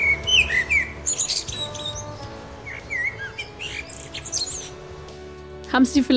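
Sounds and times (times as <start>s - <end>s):
common blackbird singing in fluting phrases: 0.0s - 5.0s
other birds chirping faintly: 0.0s - 5.6s
speech: 5.8s - 6.1s.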